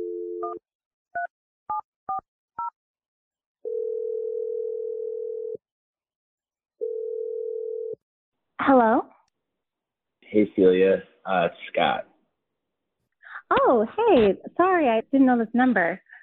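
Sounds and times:
telephone dial tone: 3.6s - 5.6s, 6.8s - 8.0s
speech: 8.7s - 9.1s, 10.3s - 12.1s, 13.5s - 16.0s.

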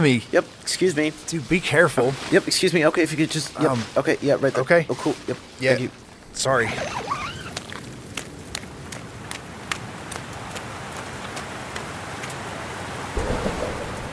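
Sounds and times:
speech: 0.0s - 7.2s
heavy rain pouring in a thunderstorm: 0.0s - 14.1s
low rumble of thunder: 13.1s - 14.1s.

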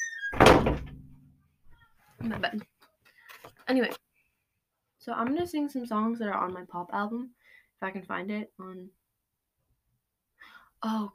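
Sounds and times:
door creaking: 0.0s - 1.2s
door swinging shut with a solid thud: 0.2s - 1.1s
speech: 2.2s - 2.7s, 3.7s - 4.0s, 5.0s - 9.0s, 10.8s - 11.1s.

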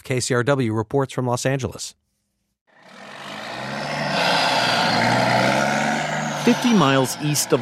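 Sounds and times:
speech: 0.1s - 2.1s, 6.4s - 7.6s
idling big rig diesel engines rumbling at a busy truck lot: 2.8s - 7.6s.

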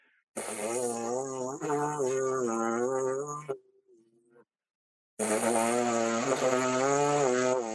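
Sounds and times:
brass player's free lip buzz with reedy wavering tones: 0.4s - 3.6s, 5.2s - 7.7s.

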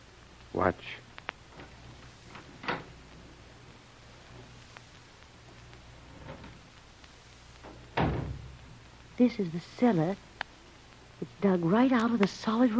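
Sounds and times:
steady low hum: 0.0s - 12.7s
speech: 0.5s - 1.1s, 9.2s - 10.3s, 11.2s - 12.7s
door thump: 7.6s - 8.6s.

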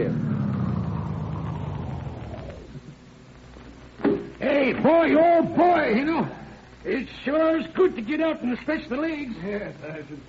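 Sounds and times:
car engine rumbling as car approaches and pulls up: 0.0s - 3.0s
speech: 4.7s - 10.2s.

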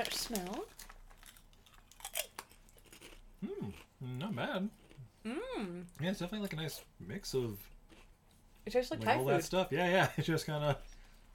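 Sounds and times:
speech: 0.0s - 0.8s, 3.4s - 7.7s, 8.6s - 11.3s
crunchy chewing of a Thai-spiced potato chip: 0.1s - 5.1s, 7.6s - 8.1s.

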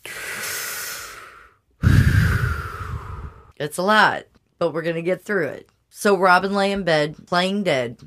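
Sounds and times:
heavier louder exhale: 0.0s - 3.5s
long deep inhale: 0.0s - 3.5s
speech: 3.6s - 8.0s.

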